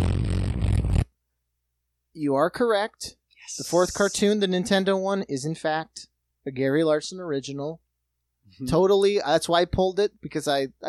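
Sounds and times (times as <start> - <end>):
lips blowing a raspberry imitating a fart: 0.0 - 1.1
speech: 2.2 - 7.8, 8.5 - 10.8.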